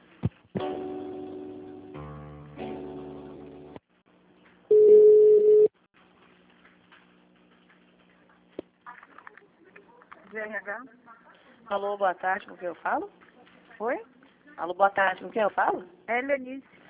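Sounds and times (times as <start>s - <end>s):
buzzing harmonic telephone line tones during call transfer: 4.7s - 5.7s
speech: 10.4s - 11.0s, 11.7s - 13.2s, 13.8s - 16.7s.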